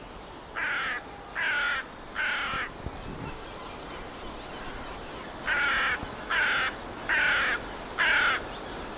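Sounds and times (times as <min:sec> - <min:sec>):
Corvus cornix croaking: 0:00.6 - 0:02.8, 0:05.5 - 0:08.6.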